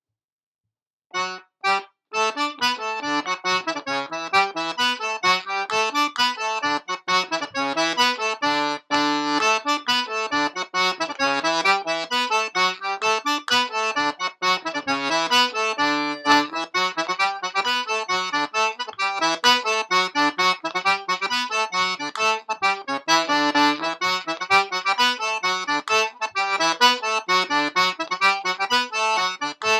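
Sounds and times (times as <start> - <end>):
Irish sean-nos dance polka music at 130 bpm: 1.2 - 29.7.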